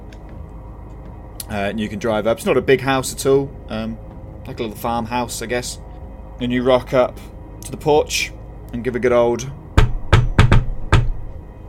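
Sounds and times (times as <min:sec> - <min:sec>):
speech: 0:01.5 - 0:09.6
sharp knocks on the wooden door of a small farmhouse from the porch: 0:09.8 - 0:11.3.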